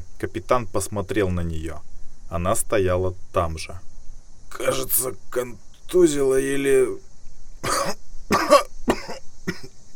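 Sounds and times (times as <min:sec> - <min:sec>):
speech: 0:00.2 - 0:03.9, 0:04.5 - 0:07.1
man coughing lying in mud after a shell blast: 0:07.6 - 0:09.9.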